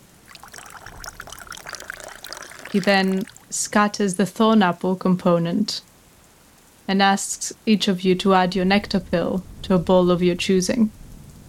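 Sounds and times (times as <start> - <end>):
water pouring from water skins into bowls of black tea: 0.0 - 3.8
speech: 2.7 - 5.9, 6.9 - 11.0.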